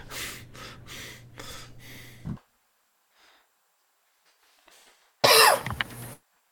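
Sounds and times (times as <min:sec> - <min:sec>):
single loud cough: 0:05.2 - 0:05.7.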